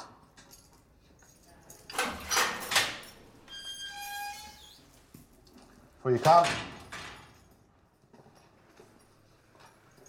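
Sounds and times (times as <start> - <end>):
heavy metal prison cell door rattling and clanking as it is unlocked: 1.9 - 3.3, 6.2 - 7.5
heavy metal prison door grinding open with a high-pitched squealing slide: 3.5 - 4.9
speech: 6.0 - 6.7.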